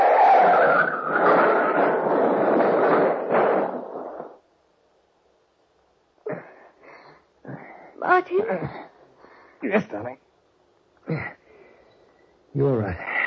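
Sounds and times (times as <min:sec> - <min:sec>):
car skidding off road into ditch and turning over: 0:00.0 - 0:04.4
speech: 0:08.3 - 0:08.8, 0:09.7 - 0:10.2, 0:12.6 - 0:13.1.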